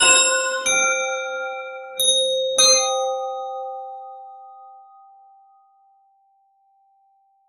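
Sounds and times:
epic bell ringing: 0:00.0 - 0:03.5.

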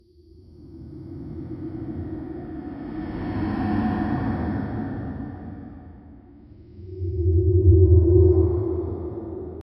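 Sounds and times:
creepy ambient sound: 0:00.1 - 0:09.6.

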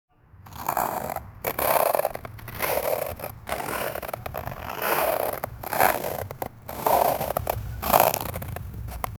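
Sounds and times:
ice skating: 0:00.5 - 0:09.1.

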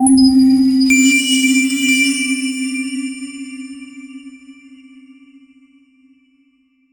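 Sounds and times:
eerie mystical horror tone: 0:00.0 - 0:03.8.

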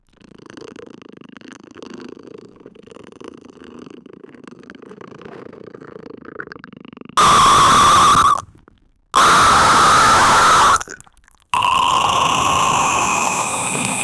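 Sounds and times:
loud unstoppable slurping: 0:07.2 - 0:08.5, 0:09.2 - 0:14.0.

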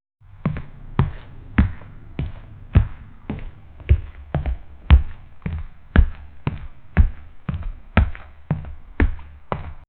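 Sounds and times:
realistic footsteps for game audio: 0:00.2 - 0:09.8.

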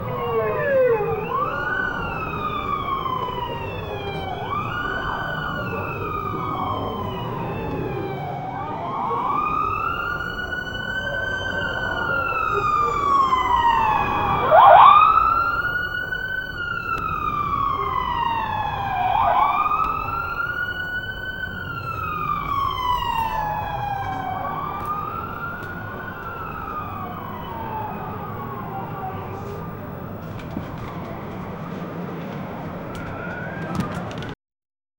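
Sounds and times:
crime scene ambience: 0:00.0 - 0:34.4.

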